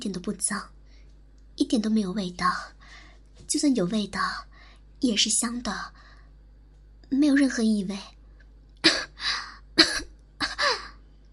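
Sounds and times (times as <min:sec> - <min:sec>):
speech: 0:00.0 - 0:00.8, 0:01.6 - 0:02.8, 0:03.5 - 0:06.0, 0:07.1 - 0:08.2
coughing: 0:08.8 - 0:09.2, 0:09.8 - 0:11.0.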